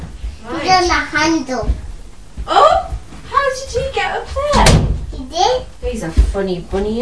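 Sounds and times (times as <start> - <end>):
speech: 0.7 - 1.8, 3.6 - 6.9
door swinging shut: 4.5 - 5.1.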